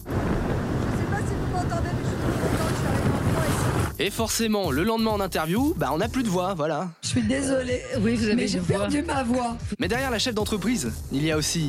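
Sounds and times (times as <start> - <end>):
low rumble: 0.0 - 4.0
roaring wind on a boat: 0.0 - 4.0
rushing water on a boat: 0.0 - 4.0
speech: 4.0 - 11.6.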